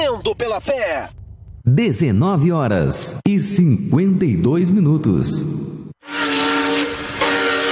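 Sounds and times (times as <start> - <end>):
speech: 0.1 - 5.8
steam train whistle: 6.0 - 7.7.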